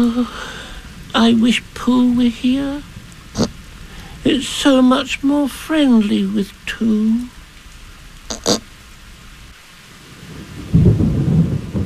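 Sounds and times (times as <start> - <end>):
speech: 0.0 - 3.5, 4.2 - 7.4
heavy rain: 0.0 - 11.8
sharp thunder cracks: 10.2 - 11.8.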